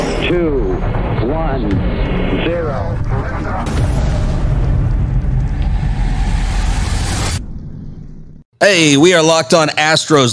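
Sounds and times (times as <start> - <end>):
rocket engine ignition and launch: 0.1 - 8.5
speech: 8.7 - 10.3.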